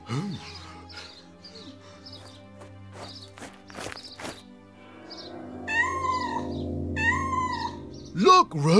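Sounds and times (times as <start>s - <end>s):
cat meowing: 5.1s - 7.8s
speech: 8.5s - 8.7s.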